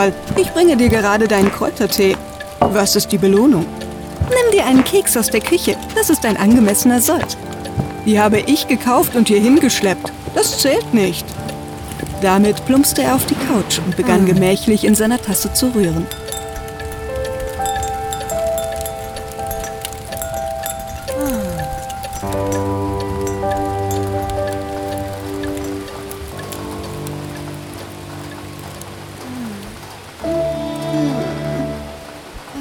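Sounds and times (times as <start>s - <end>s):
speech: 0.0s - 11.5s, 12.2s - 16.2s
soft sustained musical tones and gliding notes: 0.0s - 32.5s
steady rain on a roof: 0.0s - 32.5s.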